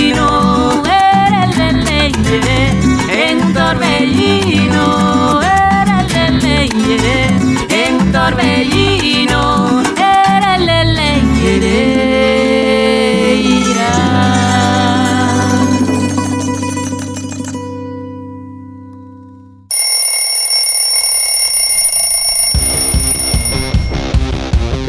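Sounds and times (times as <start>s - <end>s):
music: 0.0s - 19.7s, 22.8s - 24.8s
shrill electronic alarm clock ringing: 19.7s - 24.4s.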